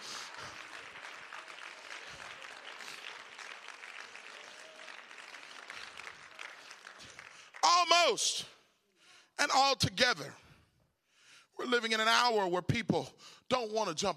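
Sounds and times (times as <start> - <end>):
large group clapping at a church service: 0.0 - 8.4
speech: 8.0 - 8.6, 9.4 - 10.4, 11.6 - 14.1.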